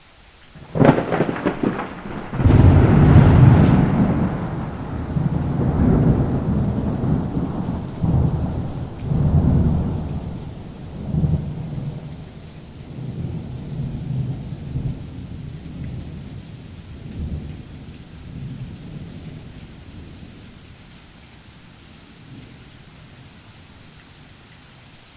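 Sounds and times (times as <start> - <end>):
thunder strike: 0.7 - 10.4.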